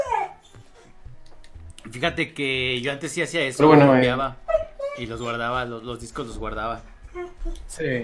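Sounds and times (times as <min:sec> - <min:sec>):
dog whimpering with a high rising whine: 0:00.0 - 0:01.0, 0:04.4 - 0:05.4, 0:07.0 - 0:07.7
speech: 0:01.9 - 0:04.4, 0:05.0 - 0:08.0.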